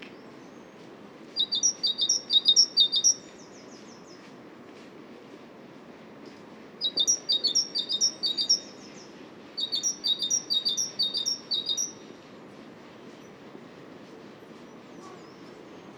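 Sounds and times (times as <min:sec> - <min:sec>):
Great tit Parus major singing see-saw two-note phrases: 0:01.4 - 0:04.2, 0:06.8 - 0:12.1, 0:14.7 - 0:15.9.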